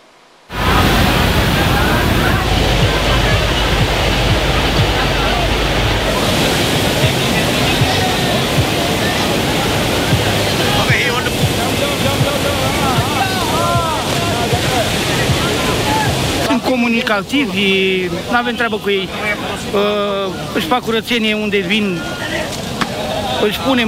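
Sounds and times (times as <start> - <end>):
flowing Ciorogârla river rushing in Ilfov County Romania: 0.0 - 23.8
people splashing while bathing in a river: 0.5 - 19.7
workers and Romanians calling out while bathing: 0.6 - 16.5
speech: 17.1 - 22.4, 23.4 - 23.8.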